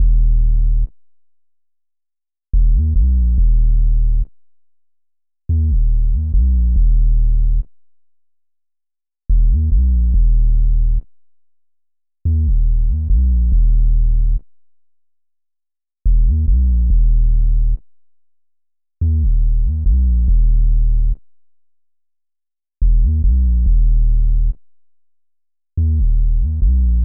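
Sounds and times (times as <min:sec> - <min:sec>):
142 BPM D sharp minor bass line: 0:00.0 - 0:00.9, 0:02.6 - 0:04.3, 0:05.5 - 0:07.7, 0:09.3 - 0:11.0, 0:12.3 - 0:14.4, 0:16.1 - 0:17.8, 0:19.0 - 0:21.2, 0:22.8 - 0:24.6, 0:25.8 - 0:27.0.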